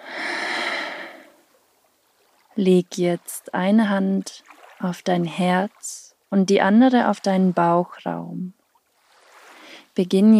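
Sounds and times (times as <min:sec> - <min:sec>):
deep breath in through the nose, out through the mouth during yoga relaxation: 0:00.0 - 0:01.4
speech: 0:02.6 - 0:08.6, 0:10.0 - 0:10.3.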